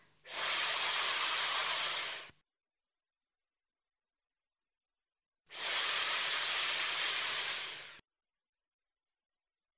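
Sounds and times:
voice making hissing sss sounds imitating tap water in a speech exercise: 0:00.3 - 0:02.3, 0:05.5 - 0:08.0.

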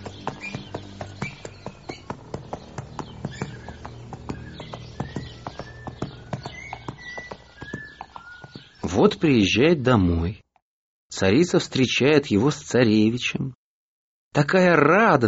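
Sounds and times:
horse hooves clip-clopping as a rider rides off: 0:00.0 - 0:08.9
faint bird chirps: 0:00.0 - 0:09.4
speech: 0:09.0 - 0:10.4, 0:11.2 - 0:13.6, 0:14.4 - 0:15.2.

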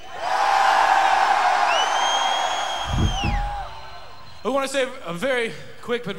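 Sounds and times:
huge festival crowd screaming and cheering: 0:00.0 - 0:04.4
high-pitched whoops and shrieks: 0:01.6 - 0:04.2
low thumps: 0:02.8 - 0:03.9
speech: 0:04.6 - 0:06.1.

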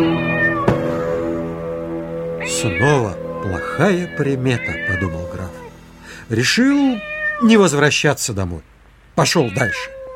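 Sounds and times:
black cat meowing: 0:00.0 - 0:00.8, 0:02.4 - 0:05.8, 0:06.4 - 0:07.6, 0:09.2 - 0:10.1
speech: 0:02.6 - 0:05.6, 0:06.3 - 0:10.0.

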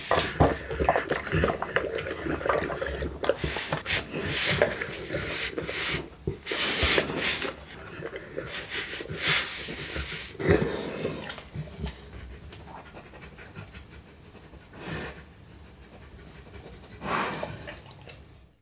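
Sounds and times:
dog drinking: 0:00.0 - 0:12.3, 0:17.6 - 0:18.4
dog eating: 0:00.0 - 0:18.6
dog sniffing: 0:03.3 - 0:18.0.

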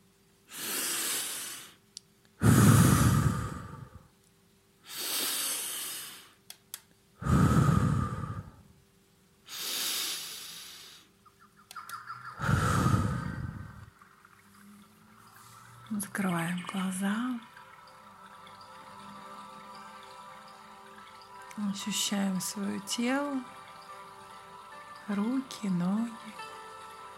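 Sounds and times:
breathing in through the nose and out through the mouth: 0:00.5 - 0:01.8, 0:02.4 - 0:04.1, 0:04.8 - 0:06.4, 0:07.2 - 0:08.8, 0:09.4 - 0:11.2, 0:12.4 - 0:15.9
speech: 0:16.0 - 0:17.5, 0:21.7 - 0:23.6, 0:25.1 - 0:26.5.

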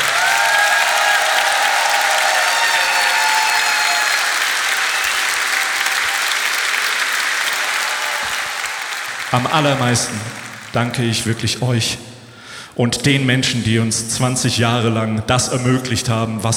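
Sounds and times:
audience applause: 0:00.0 - 0:11.6
speech: 0:09.4 - 0:12.1, 0:12.8 - 0:16.5.

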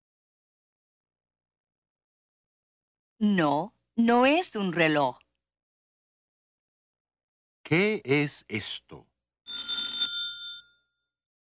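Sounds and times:
speech: 0:03.2 - 0:05.2, 0:07.7 - 0:09.7
telephone bell ringing: 0:09.5 - 0:11.1.

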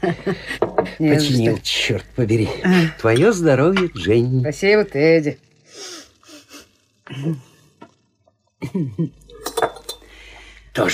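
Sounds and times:
speech: 0:00.0 - 0:05.9, 0:07.1 - 0:07.5, 0:08.6 - 0:09.2, 0:10.8 - 0:10.9
whisky glasses clinking during a toast: 0:00.6 - 0:01.0, 0:03.0 - 0:04.1, 0:09.2 - 0:10.2.

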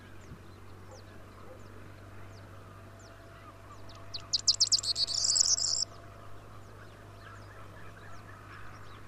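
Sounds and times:
steady low hum: 0:00.0 - 0:09.0
corn bunting Emberiza calandra singing a tinkling trill: 0:04.2 - 0:05.8.

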